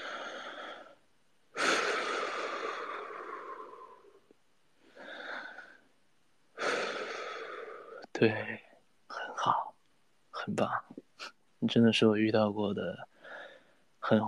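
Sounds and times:
person breathing deeply during a procedure: 0:00.0 - 0:01.0, 0:01.6 - 0:05.8, 0:06.6 - 0:08.0, 0:13.1 - 0:13.8
speech: 0:08.2 - 0:08.7, 0:09.4 - 0:09.7, 0:10.4 - 0:10.9, 0:11.6 - 0:13.1.

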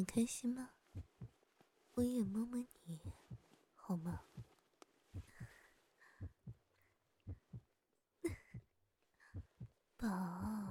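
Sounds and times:
speech: 0:00.0 - 0:01.1, 0:02.0 - 0:03.2, 0:03.9 - 0:04.5, 0:10.0 - 0:10.6
steady heartbeat thumping: 0:00.9 - 0:01.4, 0:02.0 - 0:10.6.

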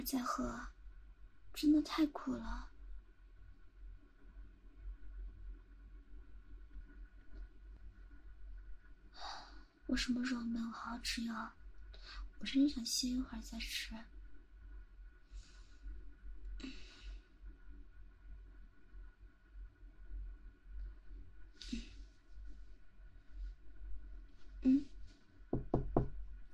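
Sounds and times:
speech: 0:00.0 - 0:00.8, 0:01.6 - 0:02.7, 0:09.2 - 0:14.1, 0:16.6 - 0:16.8
low steady indoor hum: 0:00.0 - 0:26.5
knocking on a door: 0:25.5 - 0:26.3.

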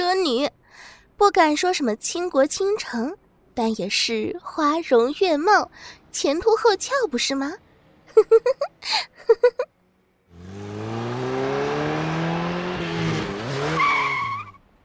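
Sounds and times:
speech: 0:01.2 - 0:07.6, 0:08.2 - 0:09.7
sports car engine revving hard: 0:10.3 - 0:13.8.

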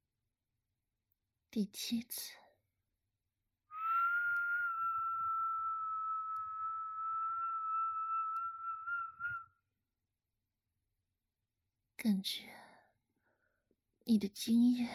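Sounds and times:
speech: 0:01.5 - 0:02.4, 0:12.0 - 0:12.6, 0:14.1 - 0:14.9
person whistling one long steady note: 0:03.8 - 0:09.5.

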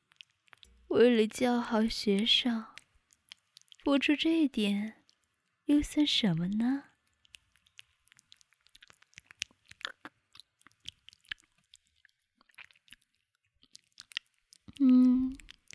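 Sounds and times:
wet licking and mouth sounds: 0:00.0 - 0:00.9, 0:02.1 - 0:03.9, 0:07.0 - 0:15.7
speech: 0:00.9 - 0:02.7, 0:03.9 - 0:05.0, 0:05.7 - 0:06.9.

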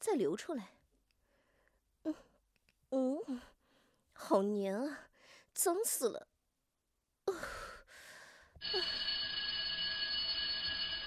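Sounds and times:
speech: 0:00.1 - 0:00.8, 0:02.0 - 0:02.3, 0:02.9 - 0:03.5, 0:04.2 - 0:06.3
electric school bell ringing for end of class at a junior high school: 0:08.6 - 0:11.0.

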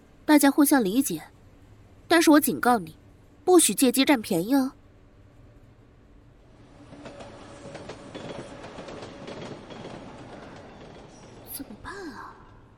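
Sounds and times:
speech: 0:00.4 - 0:01.4, 0:02.1 - 0:04.8
subway train rattling and rumbling along the tracks: 0:06.4 - 0:11.8.

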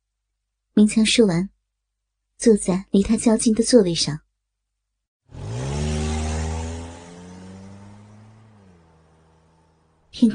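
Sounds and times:
speech: 0:00.8 - 0:01.6, 0:02.4 - 0:04.2
car engine starting, revving and idling: 0:05.3 - 0:10.3.

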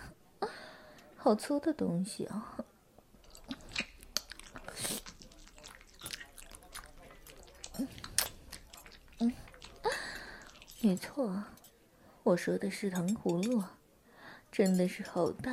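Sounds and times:
speech: 0:01.2 - 0:02.7, 0:10.8 - 0:11.6, 0:12.2 - 0:13.8, 0:14.5 - 0:15.5
person chewing while eating a meal: 0:03.1 - 0:11.6.

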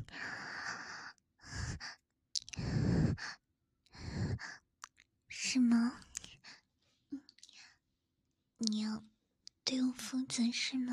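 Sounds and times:
heavy panting breaths: 0:00.1 - 0:04.6
speech: 0:05.5 - 0:06.0, 0:10.4 - 0:10.9.

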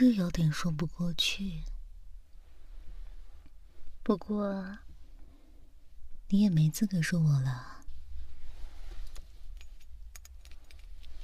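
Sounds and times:
speech: 0:00.0 - 0:01.7, 0:04.0 - 0:04.9, 0:06.3 - 0:07.8
keys on a keychain jangling: 0:09.5 - 0:11.2.

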